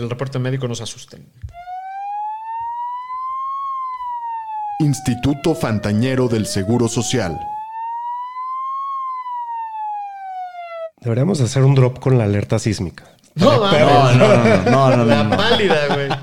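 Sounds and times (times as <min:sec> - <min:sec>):
speech: 0:00.0 - 0:01.6, 0:04.8 - 0:07.6, 0:11.0 - 0:16.2
ambulance siren sound effect wailing: 0:01.5 - 0:11.0
laughter: 0:13.4 - 0:16.2.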